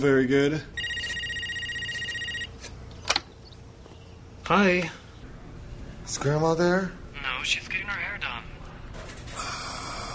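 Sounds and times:
speech: 0.0s - 0.8s, 4.5s - 5.0s, 6.1s - 7.9s
telephone ringing with a warbling electronic trill: 0.8s - 2.8s.

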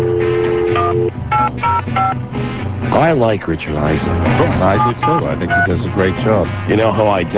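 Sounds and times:
telephone keypad dialing tones as a call is placed: 0.0s - 2.2s
speech: 2.0s - 7.3s.

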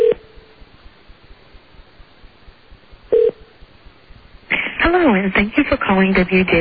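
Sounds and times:
tinny ringback tones of an outgoing phone call over a phone line: 3.1s - 3.4s
woman's recorded voicemail greeting: 4.8s - 6.6s.

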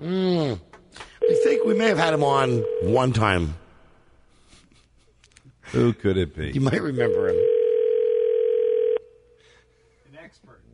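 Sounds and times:
telephone ringing tone down the line while calling a guest expert: 1.2s - 3.3s, 7.0s - 9.1s
speech: 1.6s - 3.6s, 5.7s - 7.5s.

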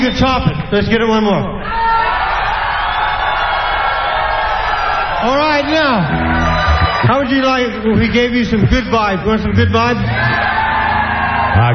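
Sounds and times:
speech: 0.0s - 2.0s, 5.2s - 6.3s, 7.0s - 10.4s, 11.6s - 11.7s
large audience yelling and screaming: 1.6s - 7.9s, 10.0s - 11.7s.

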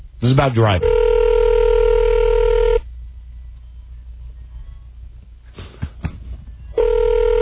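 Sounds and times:
speech: 0.2s - 1.0s
telephone line ringing tone as a call is placed: 0.8s - 2.8s, 6.8s - 7.4s.

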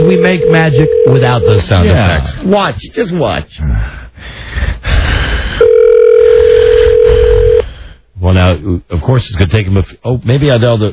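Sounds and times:
rough telephone line noise: 0.0s - 1.8s, 5.6s - 7.6s
speech: 0.2s - 5.1s, 8.2s - 10.9s.

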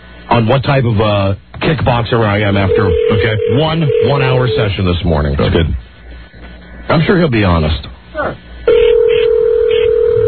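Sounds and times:
speech: 0.4s - 5.8s, 6.9s - 8.5s
telephone busy signal on an on-air radio phone call: 2.7s - 4.7s, 8.7s - 10.2s.

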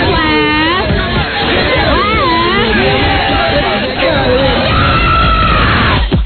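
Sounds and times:
crowd-like hubbub: 0.0s - 6.2s
woman screaming loudly: 4.6s - 6.0s.

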